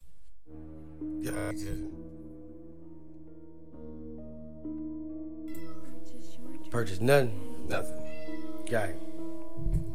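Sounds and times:
speech: 1.3s - 2.0s, 6.7s - 8.0s, 8.7s - 9.8s
cat meowing: 5.5s - 6.2s, 7.7s - 9.1s.

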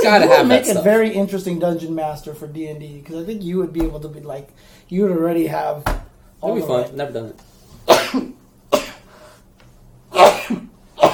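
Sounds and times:
speech: 0.0s - 8.4s
person sneezing: 7.8s - 9.1s, 10.1s - 11.1s.

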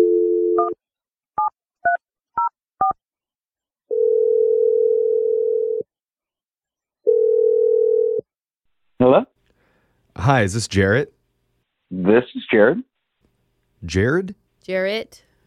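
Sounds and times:
steady telephone dial tone: 0.0s - 0.8s, 3.9s - 5.9s, 7.1s - 8.3s
speech: 0.6s - 1.5s, 9.0s - 9.3s, 10.2s - 11.2s, 11.9s - 12.9s, 13.8s - 15.3s.

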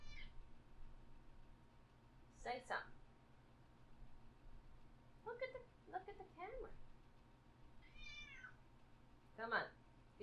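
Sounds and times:
cat meowing: 0.0s - 0.4s, 7.8s - 8.6s
low hum: 0.0s - 10.2s
speech: 2.4s - 3.0s, 5.2s - 6.8s, 9.4s - 9.8s.

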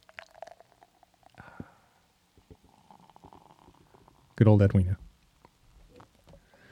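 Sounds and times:
fizzy drink fizzing: 0.0s - 1.4s, 2.5s - 4.2s
speech: 4.4s - 5.0s.

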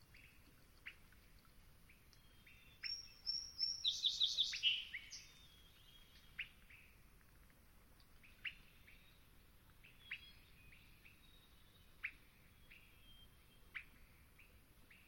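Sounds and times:
male Song Sparrow singing at dawn in the Okanogan mountains: 2.1s - 6.9s, 9.8s - 15.0s.

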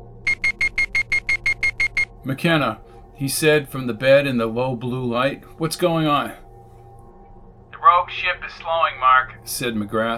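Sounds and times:
rapid high-pitched electronic alarm beeping: 0.2s - 2.2s
speech: 2.2s - 6.4s, 8.1s - 10.1s.

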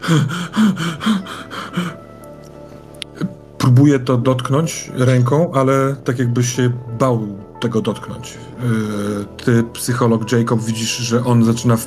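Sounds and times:
person acting out fast panicked breathing and gasps: 0.0s - 2.1s
speech: 0.1s - 1.9s, 3.8s - 11.8s.

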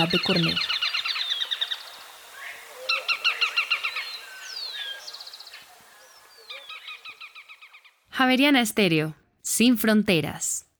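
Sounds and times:
speech: 0.0s - 0.7s, 8.2s - 10.5s
slaty finch trilling: 0.0s - 8.0s.

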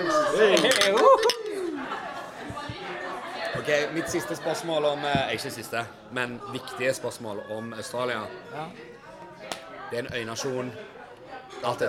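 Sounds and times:
speech: 0.0s - 1.4s, 3.7s - 8.9s, 9.9s - 10.9s, 11.5s - 11.8s
laughter: 0.0s - 5.4s
people talking and cheering: 0.0s - 11.8s
glasses clinking in a toast: 0.5s - 1.6s.

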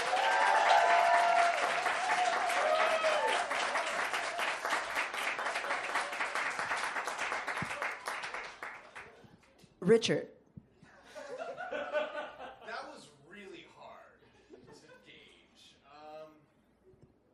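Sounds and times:
audience at a debate event cheering to vote: 0.0s - 9.1s
audience at a debate event clapping to vote: 0.0s - 9.2s
speech: 9.8s - 10.4s
laughter: 11.0s - 12.9s, 14.3s - 15.3s.

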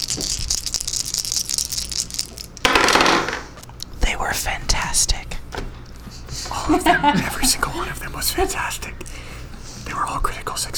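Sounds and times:
dice jangling and clacking in one hand: 0.0s - 3.9s
laughter: 6.2s - 9.5s
speech: 6.7s - 9.2s, 10.0s - 10.7s.

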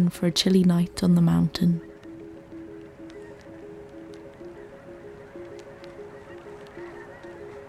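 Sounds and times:
speech: 0.0s - 1.9s
breezy outdoor noise: 0.0s - 7.6s
flock of geese honking: 1.5s - 7.6s.

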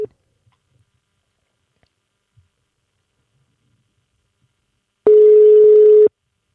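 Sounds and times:
electronic telephone ringing tone: 5.1s - 6.1s.

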